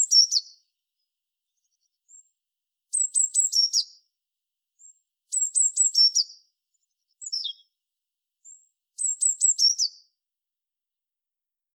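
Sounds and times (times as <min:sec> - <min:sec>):
Eurasian blue tit Cyanistes caeruleus calls: 0:00.0 - 0:00.5, 0:02.9 - 0:04.0, 0:05.3 - 0:06.4, 0:07.2 - 0:07.7, 0:09.0 - 0:10.0.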